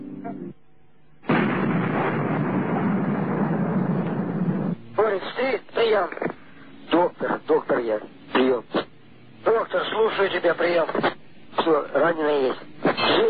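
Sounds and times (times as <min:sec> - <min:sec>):
gunfire in battle over a narrow-band radio link: 0:01.2 - 0:04.8
person talking over a narrow-band radio link: 0:05.0 - 0:08.9, 0:09.4 - 0:13.2.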